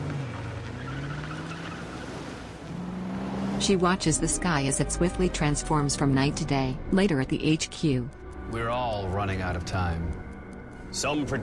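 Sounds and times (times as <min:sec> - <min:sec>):
car engine drone making a U-turn and driving away: 0:00.0 - 0:06.7
speech: 0:03.6 - 0:10.3, 0:10.9 - 0:11.4.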